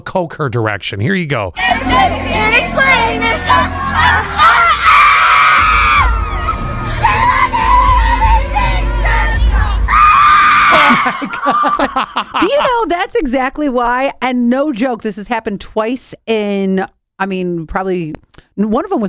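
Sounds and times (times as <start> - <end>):
speech: 0.0 - 4.8, 11.0 - 19.0
heavy bass-filled concert noise: 1.6 - 10.0
roaring concert crowd: 3.5 - 11.2
people yelling: 4.0 - 8.2, 9.9 - 11.8
girl screaming at a concert: 4.4 - 8.0, 9.9 - 11.8
laughter: 10.6 - 12.9.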